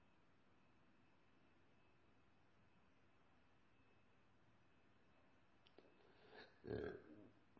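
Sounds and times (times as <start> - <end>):
man burping: 6.4 - 7.2
speech: 6.6 - 7.1.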